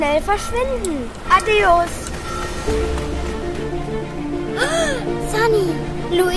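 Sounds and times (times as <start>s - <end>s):
speech: 0.0s - 3.1s, 4.6s - 6.3s
tonal musical backing: 0.2s - 6.3s
huge wave surging toward a harbor, roar of rushing water: 1.0s - 5.2s.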